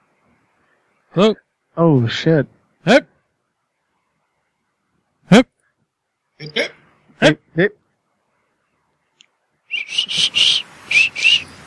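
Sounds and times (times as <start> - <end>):
speech: 1.1 - 3.1, 5.3 - 5.5, 6.4 - 7.8, 9.9 - 10.5
person whistling high clear notes: 9.7 - 11.5.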